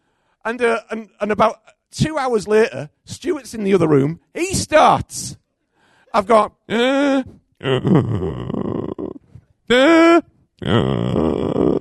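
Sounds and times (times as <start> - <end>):
speech: 0.4 - 5.4, 6.1 - 8.6, 9.7 - 11.2
voice imitating a person's snoring: 7.6 - 9.9, 10.6 - 11.7.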